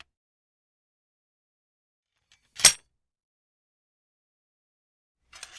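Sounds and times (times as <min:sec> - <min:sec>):
sword being sheathed: 0:02.6 - 0:02.8.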